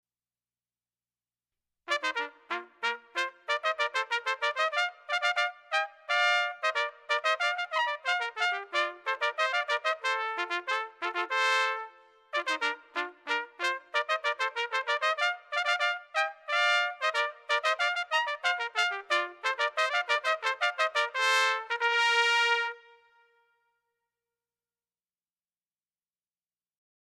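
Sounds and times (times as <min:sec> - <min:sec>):
herald trumpets playing a rondeau: 0:01.9 - 0:23.5.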